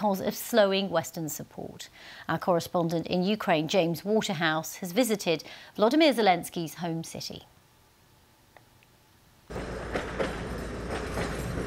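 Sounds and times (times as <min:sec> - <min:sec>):
speech: 0:00.0 - 0:07.6
tram rumbling along rails: 0:09.5 - 0:11.6
tram wheels clacking over track joints: 0:09.5 - 0:11.6.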